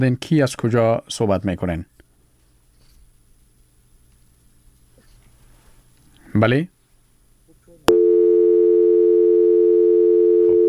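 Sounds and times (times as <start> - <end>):
speech: 0.0 - 1.9, 6.3 - 6.8
steady telephone tone after a dropped call: 7.9 - 10.6.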